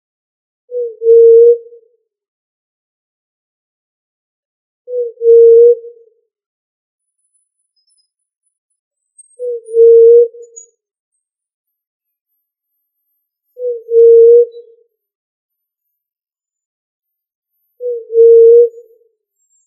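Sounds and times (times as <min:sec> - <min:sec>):
pigeon of family Columbidae cooing: 0:00.7 - 0:01.7, 0:04.9 - 0:05.9, 0:09.4 - 0:10.5, 0:13.6 - 0:14.7, 0:17.8 - 0:18.9.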